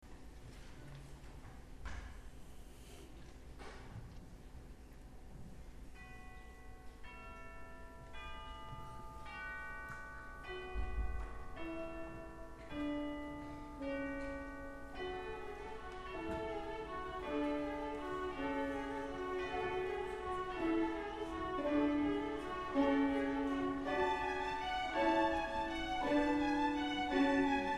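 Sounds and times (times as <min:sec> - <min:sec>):
traditional carol music: 0:06.0 - 0:27.7.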